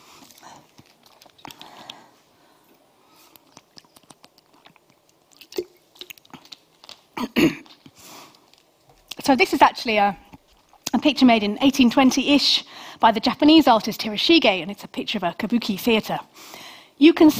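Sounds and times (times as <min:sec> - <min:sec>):
person sipping and swallowing water: 0:00.2 - 0:08.7
speech: 0:09.3 - 0:10.3, 0:11.0 - 0:17.3.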